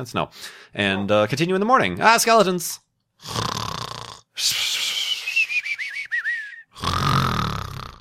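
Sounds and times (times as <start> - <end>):
speech: 0.0 - 3.6, 4.4 - 4.6
person snoring: 3.2 - 5.0, 6.7 - 8.0
whistling wheeze: 4.4 - 6.8.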